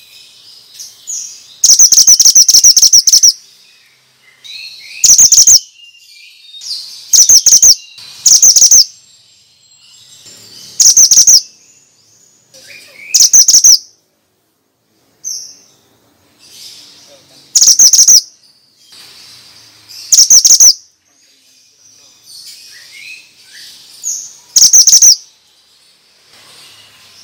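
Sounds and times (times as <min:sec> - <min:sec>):
bird giving fast runs of shrill chirps in a lure recording: 0:00.0 - 0:14.0, 0:16.4 - 0:27.2
quieter warbled bird notes: 0:00.8 - 0:14.0, 0:16.7 - 0:21.0, 0:22.7 - 0:25.3.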